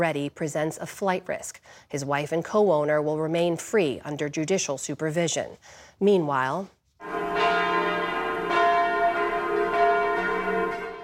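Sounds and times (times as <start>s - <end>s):
speech: 0.0s - 6.8s
church bells ringing in Switzerland on a national day of mourning: 7.0s - 11.0s.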